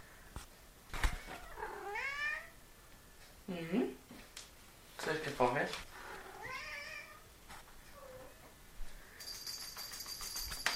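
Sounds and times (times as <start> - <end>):
cat meowing: 1.2 - 2.6, 6.0 - 7.3
speech: 3.5 - 4.0, 5.0 - 5.9.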